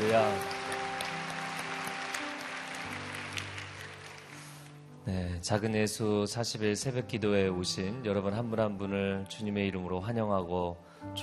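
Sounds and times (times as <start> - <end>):
audience applause: 0.0 - 4.8
speech: 0.1 - 0.6, 5.1 - 11.2.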